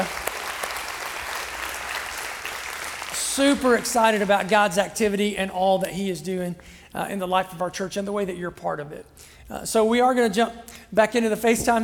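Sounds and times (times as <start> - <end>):
church congregation clapping: 0.0 - 4.9
speech: 3.4 - 11.8.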